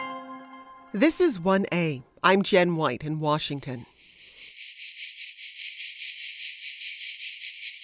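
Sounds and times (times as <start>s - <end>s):
speech: 0.9s - 3.9s
cicadas chirping and clicking in summer: 3.3s - 7.8s.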